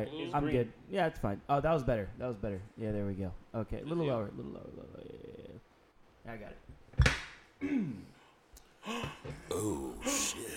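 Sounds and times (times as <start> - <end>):
speech: 0.0 - 5.6, 6.2 - 6.8, 7.6 - 8.2, 8.8 - 10.5
surprised gasp: 7.6 - 10.5.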